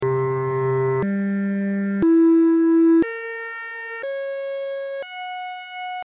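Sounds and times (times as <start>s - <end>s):
microtonal variations of the all interval chord C G E B C sharp F sharp: 0.0s - 3.1s.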